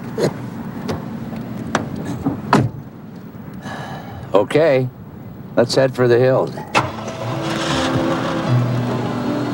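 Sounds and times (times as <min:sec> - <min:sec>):
speech: 0:00.2 - 0:00.4, 0:04.4 - 0:06.7
car driving off from a bus depot: 0:06.7 - 0:09.5.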